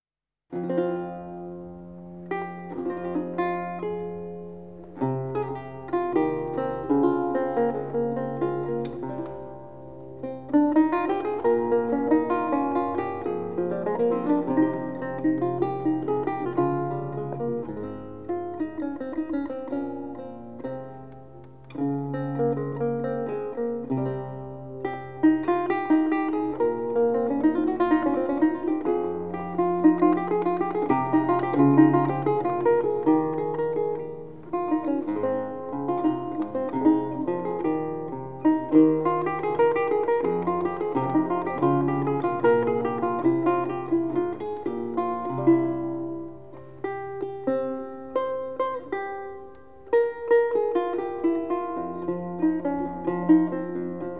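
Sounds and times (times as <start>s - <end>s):
lute prelude: 0.5s - 54.1s.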